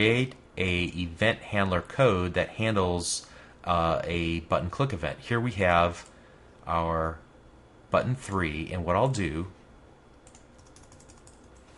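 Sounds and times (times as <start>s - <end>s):
speech: 0.0s - 6.1s, 6.7s - 7.2s, 7.9s - 9.6s
typing code on a computer keyboard: 10.2s - 11.6s.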